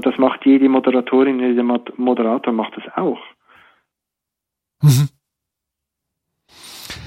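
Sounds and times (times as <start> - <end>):
speech: 0.2 - 3.3, 4.8 - 5.2
caller breathing over a phone line: 3.4 - 3.9.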